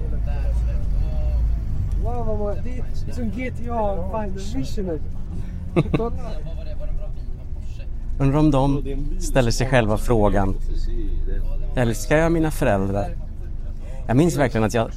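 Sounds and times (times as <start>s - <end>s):
bus engine rumble: 0.0s - 14.9s
teenage boys chattering and laughing on a bus: 0.0s - 14.9s
speech: 2.3s - 6.6s, 8.2s - 13.2s, 14.1s - 14.9s.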